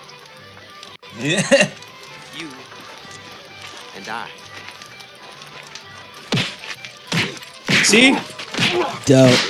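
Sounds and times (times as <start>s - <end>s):
laughter: 0.0s - 9.4s
speech: 1.2s - 1.8s, 2.4s - 2.7s, 4.0s - 4.4s, 7.8s - 9.4s
movie-style punch impacts from a fistfight: 6.3s - 9.4s.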